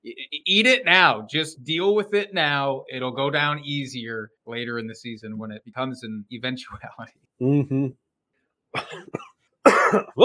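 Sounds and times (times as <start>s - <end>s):
speech: 0.5s - 8.0s, 8.7s - 10.2s
harsh cough: 8.7s - 10.2s
rough throat clearing: 8.8s - 10.2s.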